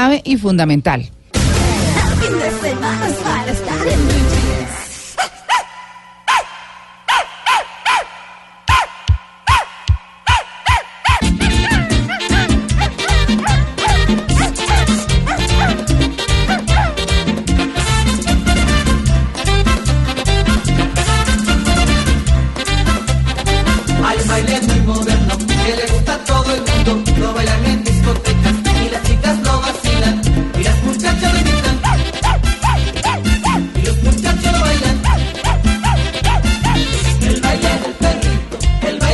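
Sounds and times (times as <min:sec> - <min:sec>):
speech: 0:00.1 - 0:01.2, 0:02.6 - 0:04.4
playful dog-like barking and yipping sounds in the music: 0:01.4 - 0:39.1
upbeat late 1980s dance song with a driving beat: 0:11.2 - 0:39.1.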